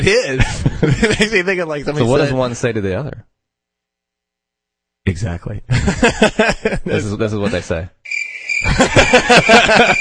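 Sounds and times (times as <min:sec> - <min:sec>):
laughter: 0:00.0 - 0:01.4, 0:05.7 - 0:07.6, 0:08.6 - 0:09.9
speech: 0:00.0 - 0:03.3, 0:05.0 - 0:09.9
crickets chirping: 0:08.1 - 0:09.9.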